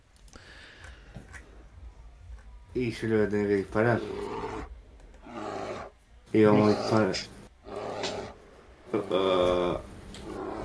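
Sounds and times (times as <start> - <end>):
speech: 2.8 - 4.4, 6.3 - 7.4, 8.9 - 9.9
bear roaring: 3.8 - 10.6.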